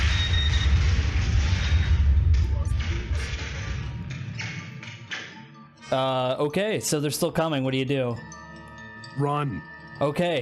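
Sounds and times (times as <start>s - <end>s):
sci-fi explosion of a torpedo blowing up a ship: 0.0s - 4.4s
scattered crackling bursts: 0.0s - 5.4s
speech: 5.9s - 8.4s, 9.2s - 10.4s.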